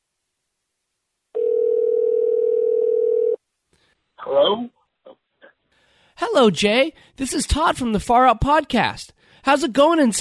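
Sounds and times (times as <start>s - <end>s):
telephone ringback tone: 1.4s - 3.4s
speech: 4.3s - 4.8s, 6.2s - 10.2s.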